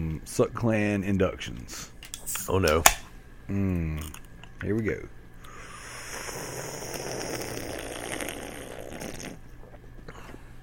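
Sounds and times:
speech: 0.2s - 5.2s
loud slurping of a drink during a Father's Day toast: 5.5s - 9.4s.

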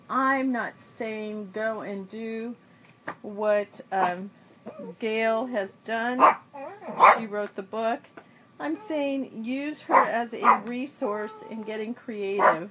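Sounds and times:
speech: 0.1s - 12.6s
dog barking: 6.2s - 7.3s, 9.9s - 10.7s, 12.4s - 12.6s.

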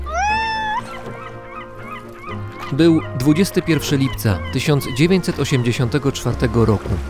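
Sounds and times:
cat meowing aboard a boat on the open sea: 0.0s - 2.0s
speech: 2.7s - 7.0s.

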